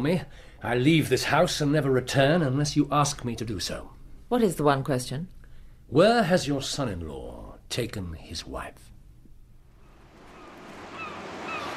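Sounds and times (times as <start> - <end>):
speech: 0.0 - 8.9
gusts of wind at the seaside: 9.9 - 11.7
surf washing in at Margate: 9.9 - 11.7
faint bird-like cries high above: 10.2 - 11.7.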